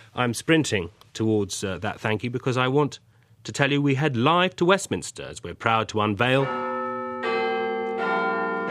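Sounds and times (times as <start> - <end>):
speech: 0.2 - 6.7
clock tower bell striking at Westminster: 6.2 - 8.6.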